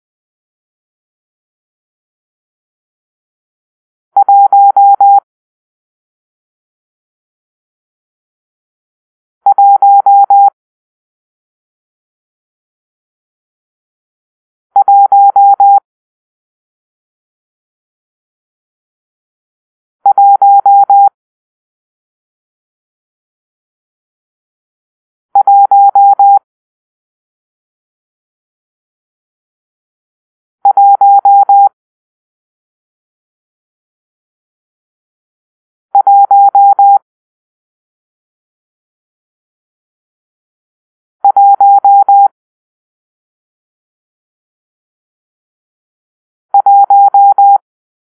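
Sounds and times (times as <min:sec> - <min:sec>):
morse code for numeral one: 0:04.2 - 0:05.2, 0:09.5 - 0:10.5, 0:14.8 - 0:15.8, 0:20.1 - 0:21.1, 0:25.4 - 0:26.4, 0:30.7 - 0:31.7, 0:36.0 - 0:37.0, 0:41.3 - 0:42.3, 0:46.6 - 0:47.6.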